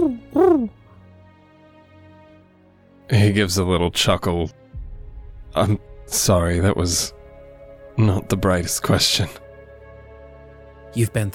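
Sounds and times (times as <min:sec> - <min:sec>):
owl hooting: 0:00.0 - 0:00.8
speech: 0:03.1 - 0:04.6, 0:05.6 - 0:07.2, 0:08.0 - 0:09.4, 0:10.9 - 0:11.3.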